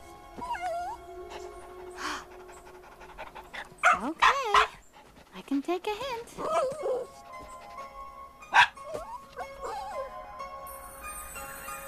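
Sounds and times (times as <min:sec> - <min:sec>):
dog whimpering: 0:00.4 - 0:02.6, 0:06.4 - 0:07.6, 0:08.8 - 0:10.1
dog panting: 0:01.2 - 0:08.0
dog yipping: 0:03.8 - 0:04.7, 0:06.4 - 0:07.6, 0:08.5 - 0:10.1
speech: 0:05.5 - 0:07.2.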